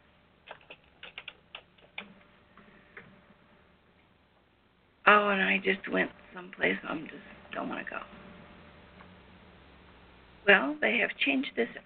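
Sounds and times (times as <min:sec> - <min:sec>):
typing on a computer keyboard: 0:00.4 - 0:02.1
speech: 0:05.1 - 0:08.2, 0:10.5 - 0:11.8.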